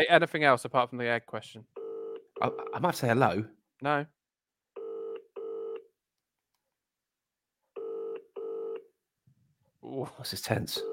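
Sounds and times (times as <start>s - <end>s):
speech: 0.0s - 1.8s, 2.4s - 4.2s, 9.8s - 10.9s
phone ringback tone in double-ring pattern: 4.8s - 5.9s, 7.8s - 8.9s.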